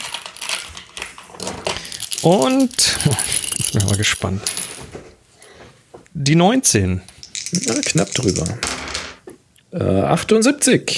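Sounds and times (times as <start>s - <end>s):
plastic dice rolling across a hard surface: 0.0s - 4.8s, 7.1s - 9.3s
speech: 2.2s - 4.6s, 6.2s - 8.8s, 9.7s - 10.9s.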